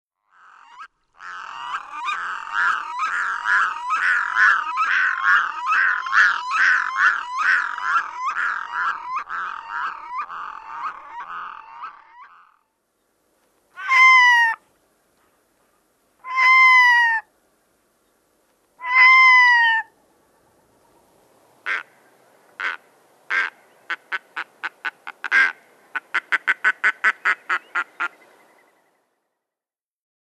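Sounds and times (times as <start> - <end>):
red-throated loon calling: 0.3 - 12.7, 13.8 - 14.6, 16.2 - 17.3, 18.8 - 20.0, 21.6 - 22.0, 22.6 - 28.3.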